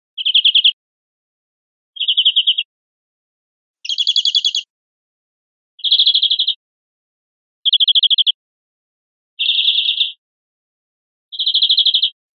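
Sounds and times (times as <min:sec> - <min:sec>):
greenfinch short struck trills: 0:02.0 - 0:02.7, 0:03.8 - 0:04.7, 0:05.8 - 0:06.6, 0:07.7 - 0:08.4, 0:09.4 - 0:10.2, 0:11.4 - 0:12.2.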